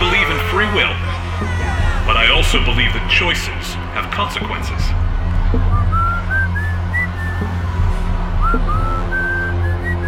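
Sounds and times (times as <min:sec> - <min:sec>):
speech: 0:00.6 - 0:01.6, 0:02.2 - 0:05.8
man whistling a bright bouncy happy tune: 0:05.6 - 0:10.0.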